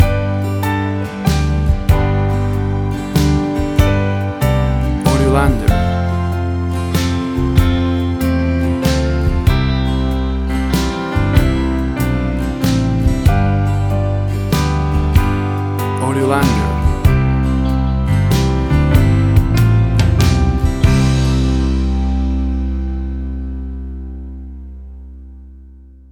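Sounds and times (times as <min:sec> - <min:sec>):
warm romantic modern guitar ballad: 0:00.0 - 0:26.1.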